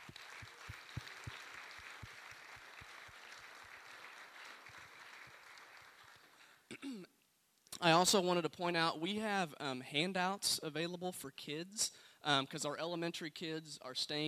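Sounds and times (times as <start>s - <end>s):
audience applauding a worship band: 0.0s - 6.6s
speech: 7.8s - 14.2s.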